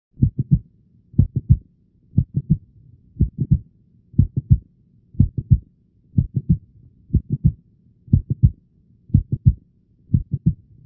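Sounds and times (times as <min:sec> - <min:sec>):
mid-to-late systolic heart click: 0:00.2 - 0:00.6, 0:01.2 - 0:01.6, 0:02.2 - 0:03.6, 0:04.2 - 0:04.6, 0:05.2 - 0:05.6, 0:06.2 - 0:10.8.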